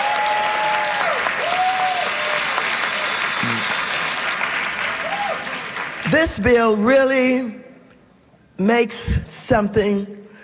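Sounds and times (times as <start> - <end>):
large crowd applauding: 0.0 - 6.5
whistles: 0.9 - 5.5
speech: 6.2 - 7.6, 8.6 - 10.2.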